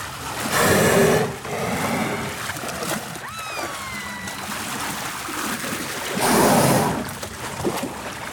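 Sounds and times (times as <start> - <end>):
lapping water: 0.0 - 8.3
killer whale exhaling through its blowhole at a marine park: 0.4 - 2.9, 6.1 - 7.2.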